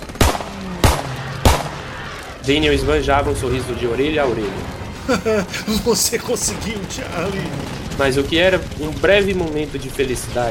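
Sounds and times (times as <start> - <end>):
gunshots fired during a close wartime struggle: 0.0 - 2.4
speech: 2.4 - 10.5
laughter: 5.0 - 6.8.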